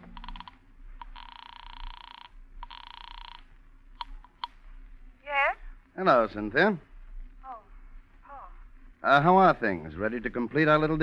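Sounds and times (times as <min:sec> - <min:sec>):
rapid flutter of clicks: 0:00.0 - 0:03.4
sharp clicks: 0:00.0 - 0:03.4, 0:04.0 - 0:04.6
telephone ringing in long electronic bursts: 0:00.0 - 0:03.5
low steady hum: 0:00.0 - 0:11.0
speech: 0:06.0 - 0:06.9, 0:09.0 - 0:11.0.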